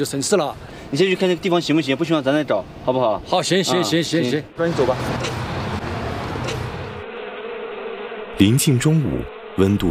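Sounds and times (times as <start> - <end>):
speech: 0.0 - 5.4, 8.4 - 9.8
honeybees swarming out of hives in the midday heat: 3.7 - 9.8.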